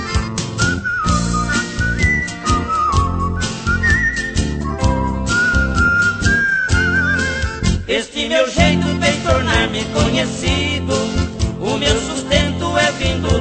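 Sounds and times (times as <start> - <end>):
band accompaniment with a steady rhythm: 0.0 - 13.4
melodic whistling in a song: 0.4 - 7.7
speech: 9.3 - 13.4.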